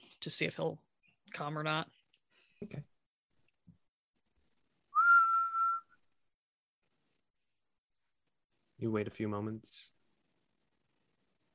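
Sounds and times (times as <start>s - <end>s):
speech: 0.2s - 2.0s, 2.6s - 2.9s, 8.8s - 10.0s
short human whistle calling an animal: 5.0s - 6.0s.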